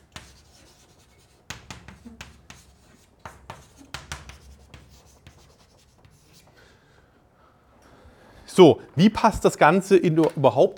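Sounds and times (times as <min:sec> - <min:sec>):
pen scratching as notes are written during a chemistry lecture: 0:00.0 - 0:06.5
speech: 0:08.6 - 0:10.7.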